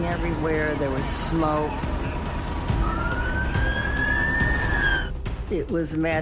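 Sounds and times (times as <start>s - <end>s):
speech: 0.1s - 2.2s, 5.5s - 6.2s
fire truck siren wailing on a street in Washington: 1.9s - 5.1s.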